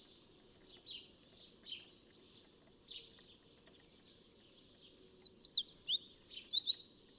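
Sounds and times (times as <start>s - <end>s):
Eurasian wren Troglodytes troglodytes squeaky twittering and scratchy notes: 5.2s - 7.1s.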